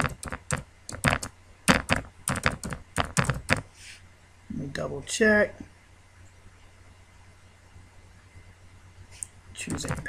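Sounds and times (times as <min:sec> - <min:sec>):
keystrokes typing an email address on a computer keyboard: 0:00.0 - 0:03.6, 0:09.7 - 0:10.0
speech: 0:04.8 - 0:05.6.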